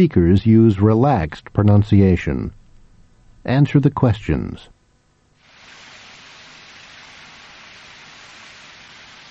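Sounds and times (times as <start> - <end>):
speech: 0.0 - 2.6, 3.4 - 4.8
water hissing and spraying from a leaking pipe: 5.4 - 9.2.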